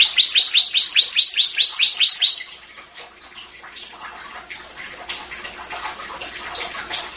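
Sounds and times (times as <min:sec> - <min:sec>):
Atlantic canary song: 0:00.0 - 0:02.7.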